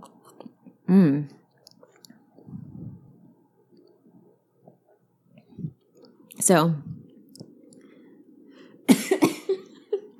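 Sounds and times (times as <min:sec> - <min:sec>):
speech: 0:00.9 - 0:01.4, 0:06.5 - 0:06.9
person coughing after inhaling while sipping neat scotch: 0:08.9 - 0:09.7.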